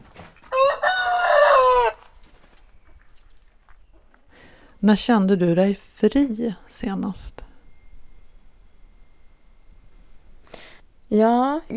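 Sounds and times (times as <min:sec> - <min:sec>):
quiet farmyard background: 0:00.0 - 0:11.7
rooster crowing among hens: 0:00.5 - 0:02.3
speech: 0:04.8 - 0:07.4, 0:11.1 - 0:11.7.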